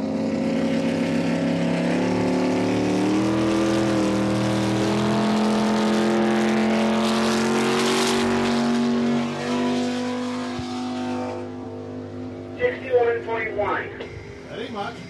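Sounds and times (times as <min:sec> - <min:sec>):
racing lobster boat engine roaring at high speed: 0:00.0 - 0:15.0.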